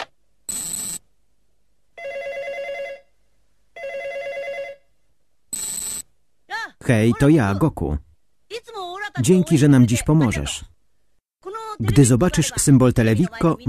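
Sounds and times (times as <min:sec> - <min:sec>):
cartoon telephone ringing with trilling and buzzy electronic rings: 0:02.0 - 0:03.1, 0:03.8 - 0:04.8, 0:05.6 - 0:06.0
speech: 0:06.9 - 0:08.1, 0:09.2 - 0:10.8, 0:11.8 - 0:13.6.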